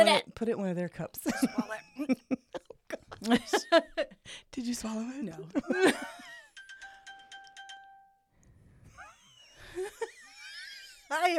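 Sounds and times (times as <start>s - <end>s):
speech: 0.0s - 2.4s, 3.2s - 6.1s, 11.1s - 11.3s
mobile phone chime: 6.1s - 8.3s.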